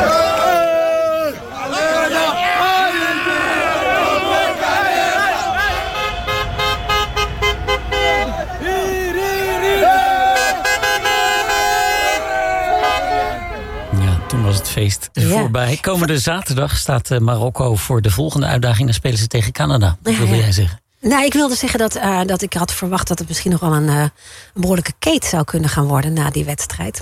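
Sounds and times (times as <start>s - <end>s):
crowd shouting and cheering at a street celebration after a football win: 0.0s - 14.8s
car horns honking at a street celebration on a city square: 3.6s - 14.6s
speech: 15.2s - 27.0s.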